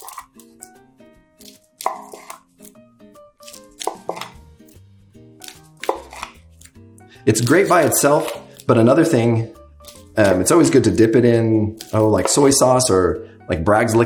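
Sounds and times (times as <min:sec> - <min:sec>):
knife slicing through a rolled food wrap: 0:00.0 - 0:00.8, 0:01.4 - 0:02.8, 0:03.4 - 0:04.8, 0:05.4 - 0:12.7
music: 0:00.0 - 0:14.0
speech: 0:07.2 - 0:09.6, 0:10.2 - 0:14.0.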